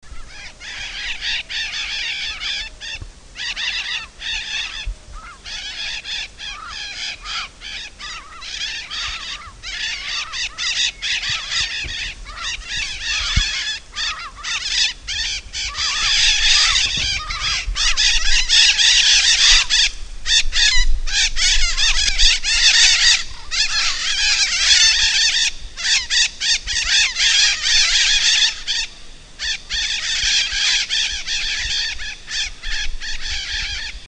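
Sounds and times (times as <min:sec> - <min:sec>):
maracana nobre calling: 0:00.1 - 0:34.0.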